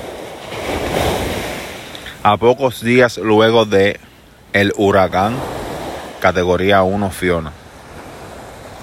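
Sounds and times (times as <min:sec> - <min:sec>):
faint rumble of wind: 0:00.0 - 0:08.8
ocean waves: 0:00.0 - 0:08.8
speech: 0:02.2 - 0:05.6, 0:06.2 - 0:07.6.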